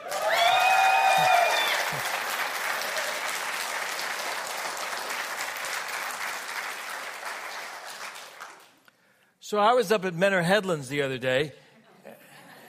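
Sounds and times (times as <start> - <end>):
large church audience applauding: 0.0 - 8.9
speech: 9.5 - 11.6.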